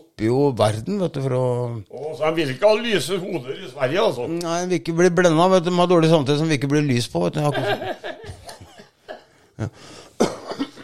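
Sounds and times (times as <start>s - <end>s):
speech: 0.2s - 8.1s, 9.6s - 10.0s
laughter: 7.4s - 10.8s
harsh coughs: 10.0s - 10.8s
stronger hacking cough: 10.2s - 10.8s.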